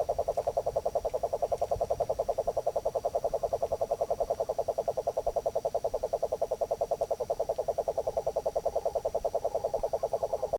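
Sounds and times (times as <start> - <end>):
cane toad trilling: 0.0 - 10.5
faint high-pitched hum: 0.0 - 10.5.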